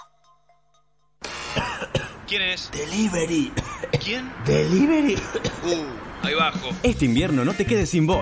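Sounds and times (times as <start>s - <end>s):
person coughing: 1.5s - 2.2s, 3.6s - 4.2s, 5.1s - 5.9s
speech: 2.3s - 8.2s.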